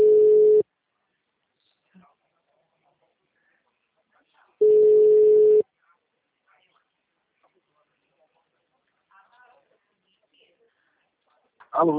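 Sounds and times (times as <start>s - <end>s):
telephone tone electronic beeps after a dropped call: 0.0s - 0.6s, 4.6s - 5.6s.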